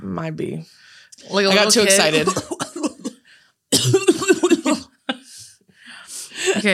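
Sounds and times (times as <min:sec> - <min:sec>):
speech: 0:00.2 - 0:02.7, 0:03.7 - 0:04.2, 0:06.5 - 0:06.7
laughter: 0:01.9 - 0:03.2, 0:04.0 - 0:05.5, 0:06.4 - 0:06.7
person coughing harshly into the microphone: 0:02.1 - 0:05.2.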